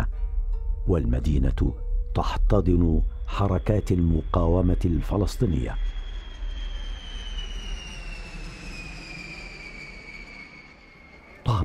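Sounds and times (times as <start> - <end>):
speech: 0.9 - 6.0
jet airplane engine roaring while landing on a runway: 3.1 - 11.6.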